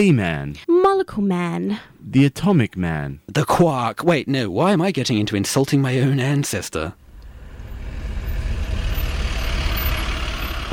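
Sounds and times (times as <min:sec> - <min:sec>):
speech: 0:00.0 - 0:07.0
truck driving past: 0:07.0 - 0:10.7.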